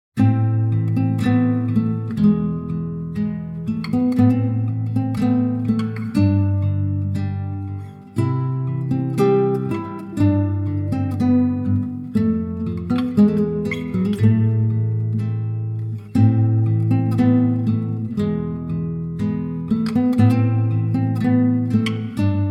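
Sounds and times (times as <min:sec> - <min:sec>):
Hybrid King classical guitar: 0:00.2 - 0:22.4.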